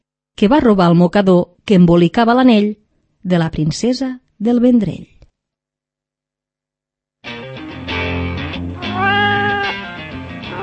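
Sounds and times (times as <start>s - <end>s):
speech: 0.4s - 5.2s
cat meowing: 8.8s - 10.6s.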